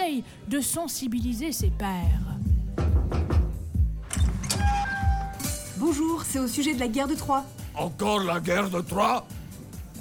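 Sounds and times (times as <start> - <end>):
speech: 0.1 - 2.9, 5.8 - 9.4
temple door rattling and creaking open: 4.0 - 5.6.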